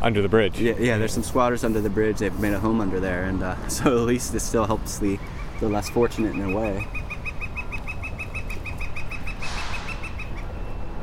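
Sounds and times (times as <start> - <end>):
speech: 0.0 - 7.0
rumbling outdoor background: 0.0 - 11.0
woodpecker calling in sharp evenly spaced notes: 3.8 - 10.9
rustling burst: 9.4 - 10.2.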